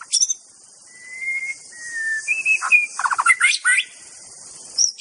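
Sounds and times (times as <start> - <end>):
wild forest-dwelling white-rumped shama whistled song: 0.2 - 3.8.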